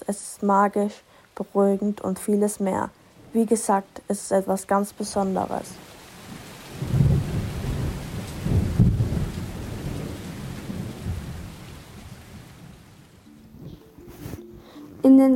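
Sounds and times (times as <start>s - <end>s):
speech: 0.1s - 5.9s, 15.2s - 15.3s
heavy rain pouring down: 1.5s - 14.4s
deep rumbles of thunder: 5.2s - 13.8s.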